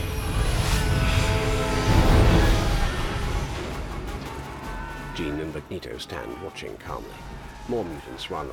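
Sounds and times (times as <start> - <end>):
jet aircraft roaring while descending and landing on a lab roof: 0.0 - 5.0
speech: 5.2 - 8.5.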